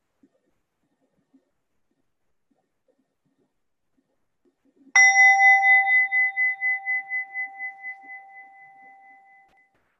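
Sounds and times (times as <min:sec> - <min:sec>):
single bell struck at a Buddhist talk: 0:05.0 - 0:09.5.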